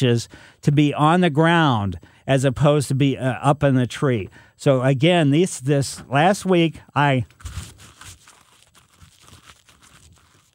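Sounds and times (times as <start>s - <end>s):
speech: 0.0s - 7.7s
person chewing tree bark: 7.3s - 10.5s.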